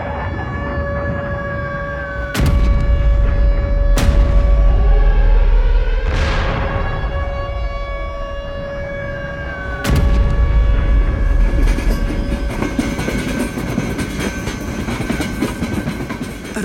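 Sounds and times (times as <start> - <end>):
steady whining tone: 0.0 - 16.5
freight train wagons rolling on rails: 11.0 - 16.6.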